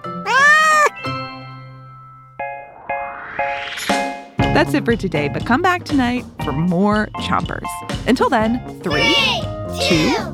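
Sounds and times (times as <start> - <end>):
cat meowing: 0.2 - 1.0
speech: 4.6 - 10.3.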